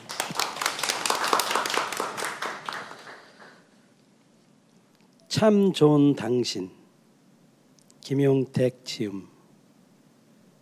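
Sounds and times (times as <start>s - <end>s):
audience clapping before a poem recitation: 0.0s - 3.7s
speech: 5.3s - 6.8s, 8.1s - 9.3s.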